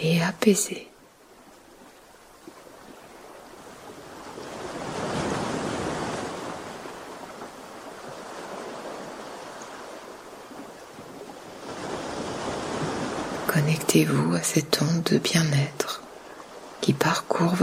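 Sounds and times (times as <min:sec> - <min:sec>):
speech: 0:00.0 - 0:00.9, 0:14.0 - 0:16.0, 0:16.8 - 0:17.6
ocean waves breaking in rushing surf: 0:00.0 - 0:17.6
low rumble of wind noise: 0:02.9 - 0:14.8.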